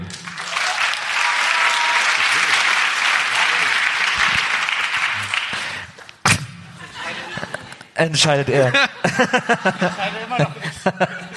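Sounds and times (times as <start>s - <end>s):
live crowd applauding to vote in a contest: 0.0s - 6.1s
single sharp thud: 6.2s - 6.6s
laughter: 6.6s - 11.3s
speech: 8.0s - 11.2s.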